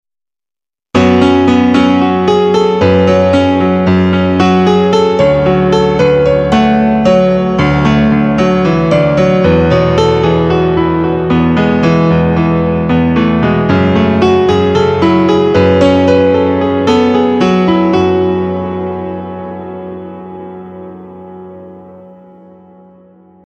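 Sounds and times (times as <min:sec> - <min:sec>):
normal piano: 0:00.9 - 0:23.4.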